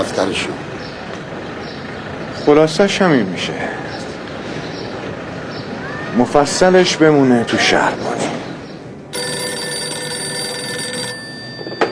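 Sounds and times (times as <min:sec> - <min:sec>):
speech: 0:00.0 - 0:00.8, 0:02.4 - 0:04.0, 0:06.1 - 0:08.3
telephone bell ringing with a bright metallic tone: 0:09.1 - 0:11.9.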